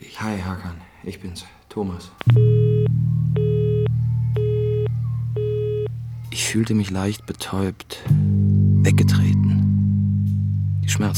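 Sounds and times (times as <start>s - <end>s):
speech: 0.2s - 3.1s, 6.5s - 9.4s, 10.9s - 11.1s
buzzy telephone tone beeps on a broken phone line: 2.3s - 6.5s
steady low electrical hum on a phone line: 2.3s - 7.3s, 8.1s - 11.1s.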